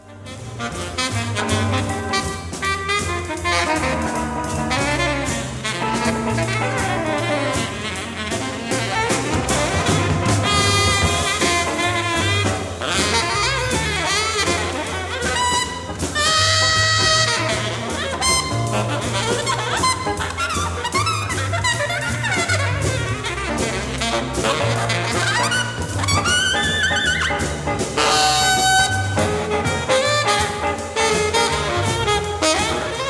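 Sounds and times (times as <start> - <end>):
bass in a jazz rhythm section: 0.0 - 33.0
drums in a jazz rhythm section: 0.0 - 33.0
jazz saxophone: 0.0 - 33.0.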